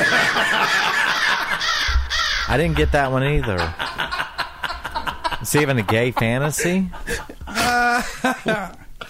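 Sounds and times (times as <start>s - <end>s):
laughter: 0.0s - 9.0s
crow cawing sound effect: 1.1s - 2.8s
speech: 2.5s - 3.9s, 5.4s - 8.8s.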